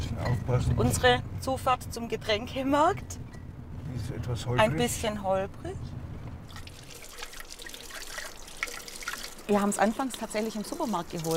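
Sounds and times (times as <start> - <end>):
speech: 0.5 - 3.2, 3.9 - 6.0, 9.5 - 11.3
water trickling from a forest spring: 6.4 - 11.3.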